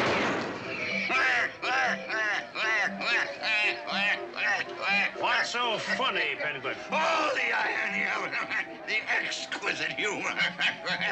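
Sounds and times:
volley of gunshots from a firing squad: 0.0s - 0.9s
laughter: 0.6s - 11.1s
speech: 5.5s - 11.1s.

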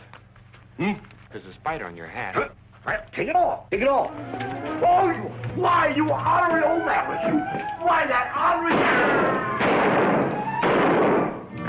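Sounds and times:
speech: 0.8s - 10.2s
gunshots fired by a sheriff in a western scene: 8.6s - 11.5s.

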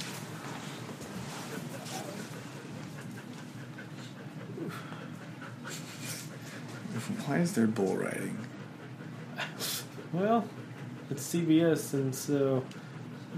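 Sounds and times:
dog sniffing close to the microphone: 0.0s - 10.0s
speech: 7.3s - 8.5s, 10.1s - 13.3s.

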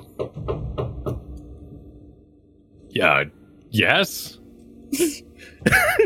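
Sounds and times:
low hum: 0.0s - 6.0s
firm knocks on a door: 0.1s - 1.3s
speech: 0.2s - 0.8s, 3.0s - 6.0s
laughter: 5.0s - 6.0s.

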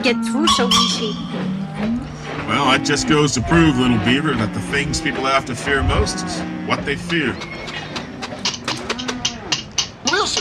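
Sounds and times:
speech: 0.0s - 7.8s
cattle lowing in a drawn-out moo: 0.0s - 9.7s
sharp clattering knocks on boards: 7.4s - 10.3s.

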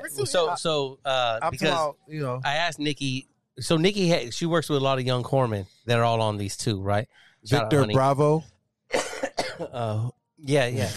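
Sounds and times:
speech: 0.1s - 10.9s
harsh breathy coughs: 8.9s - 9.8s.

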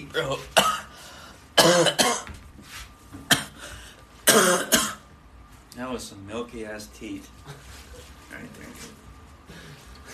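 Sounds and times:
speech: 0.0s - 0.6s, 4.4s - 4.8s, 6.0s - 9.0s
person coughing after drinking beer: 0.5s - 1.0s, 1.6s - 2.3s, 3.3s - 3.6s, 4.2s - 5.1s.

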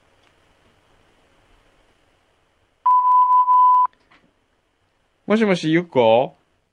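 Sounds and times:
answering machine electronic beep: 2.9s - 3.9s
speech: 5.3s - 6.4s.

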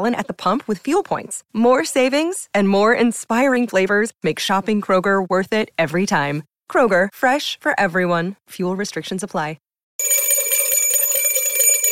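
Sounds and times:
speech: 0.0s - 10.1s
bright metallic bell ringing: 10.0s - 11.9s.

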